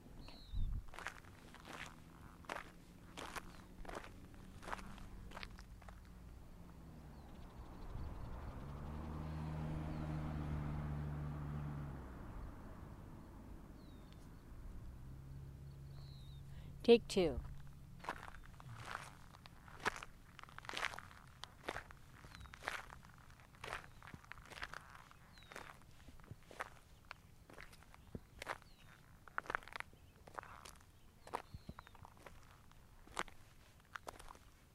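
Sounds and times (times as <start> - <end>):
big truck engine rumbling: 0.0 - 25.8
footsteps walking on gravel to a gravesite: 0.3 - 6.2, 17.4 - 34.6
speech: 16.8 - 17.5.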